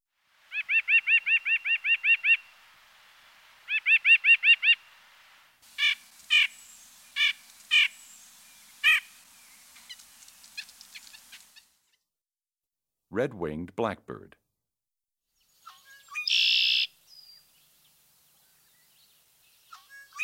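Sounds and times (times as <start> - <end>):
white-breasted nuthatch calling: 0.5 - 2.5, 3.7 - 4.8, 5.8 - 11.8, 15.6 - 17.5, 19.7 - 20.2
speech: 13.2 - 14.4.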